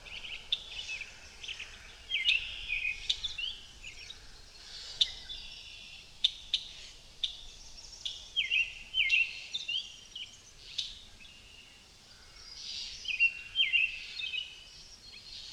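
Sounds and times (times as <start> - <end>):
blackbird singing warbled phrases at a countryside pond: 0.0 - 11.7, 12.4 - 15.5
soft steady background hiss: 0.0 - 15.5.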